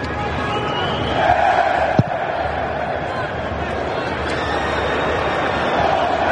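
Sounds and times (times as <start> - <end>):
football fans chanting and roaring in stadium stands: 0.7 - 6.2
sharp knock: 2.0 - 2.2.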